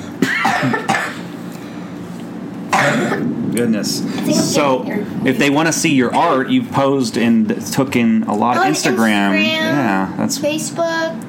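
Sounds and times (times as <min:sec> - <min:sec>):
person coughing: 0:00.2 - 0:01.3, 0:02.7 - 0:03.3
speech: 0:00.6 - 0:00.8, 0:03.0 - 0:11.2
person breathing: 0:04.0 - 0:04.4.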